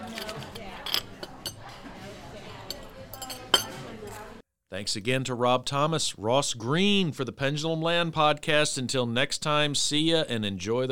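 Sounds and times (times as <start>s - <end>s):
faint tableware clatter: 0.0s - 4.0s
low murmur of voices: 0.0s - 4.4s
glasses clinking in a toast: 0.2s - 1.7s, 2.7s - 3.8s
speech: 4.7s - 10.9s.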